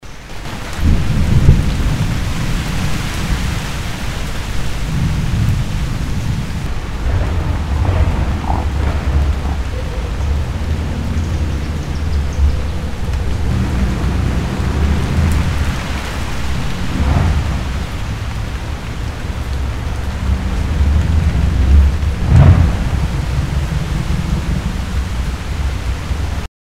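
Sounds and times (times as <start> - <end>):
rain: 0.0 - 26.5
cars passing: 6.3 - 26.4.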